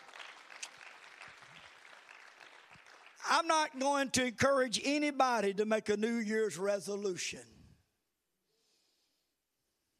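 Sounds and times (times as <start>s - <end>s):
crowd clapping: 0.0s - 4.2s
speech: 3.3s - 7.5s.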